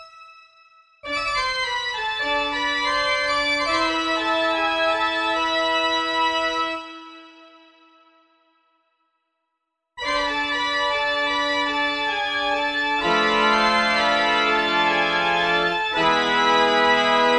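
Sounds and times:
church organ playing tutti: 1.0 - 7.5, 10.0 - 17.3.

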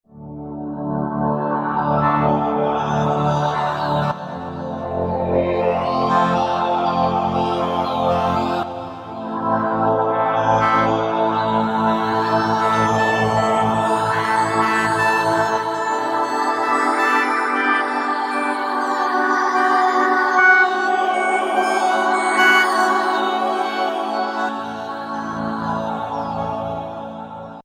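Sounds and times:
Roland V-Synth chorale pad factory patch: 0.2 - 27.6.

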